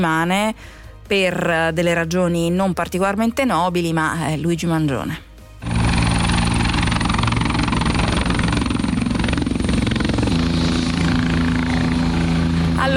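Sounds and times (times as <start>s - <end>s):
speech: 0.0s - 5.8s
helicopter rotor chop: 5.6s - 12.9s.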